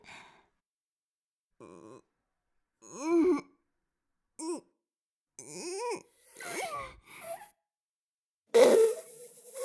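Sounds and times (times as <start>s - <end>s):
maid farting: 8.6s - 9.6s.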